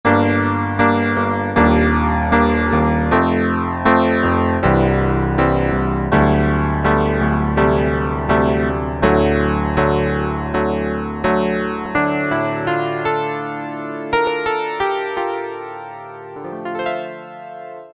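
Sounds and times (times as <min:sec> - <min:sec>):
Ensoniq ESQ-1 synthesizer piano: 0:00.0 - 0:17.9.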